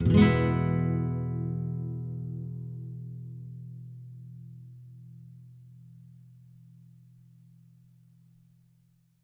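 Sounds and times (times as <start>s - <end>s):
nylon-string guitar E major chord: 0.0s - 6.8s.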